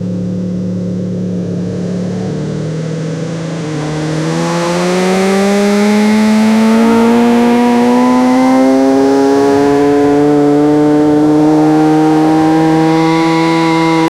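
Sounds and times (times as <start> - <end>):
1000cc motorcycle engine: 0.0 - 14.1.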